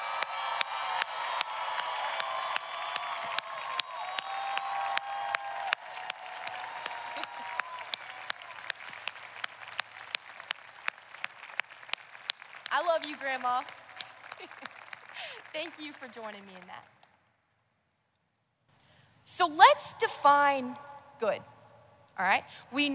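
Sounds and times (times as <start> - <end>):
cheers: 0.0 - 16.8
large audience applauding: 0.0 - 17.2
speech: 12.9 - 13.8, 14.4 - 17.0, 19.4 - 21.5, 22.2 - 22.9.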